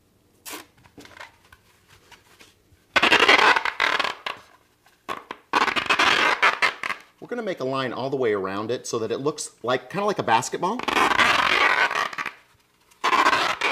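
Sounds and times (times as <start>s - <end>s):
waterproof tape ripping off its roll: 0.4s - 7.2s, 10.7s - 13.7s
speech: 7.3s - 11.1s.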